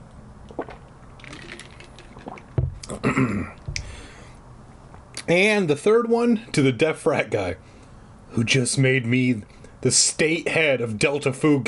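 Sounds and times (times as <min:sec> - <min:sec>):
swallowing gulps: 0:00.4 - 0:04.0
person sipping water between shots of alcohol: 0:00.5 - 0:04.0
speech: 0:03.1 - 0:03.6, 0:05.3 - 0:07.7, 0:08.3 - 0:11.6.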